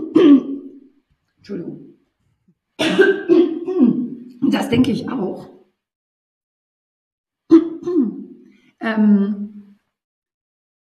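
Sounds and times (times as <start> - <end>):
person clearing throat: 0.0 - 0.8, 2.8 - 4.2, 7.5 - 8.3
speech: 1.4 - 1.9, 2.8 - 5.6, 8.9 - 9.5.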